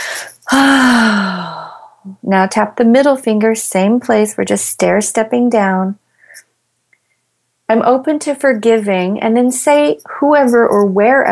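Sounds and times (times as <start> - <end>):
deep breath during a calming finger-tapping exercise: 0.0 - 2.0, 6.1 - 6.4
speech: 0.5 - 1.0, 2.2 - 6.0, 7.7 - 11.3.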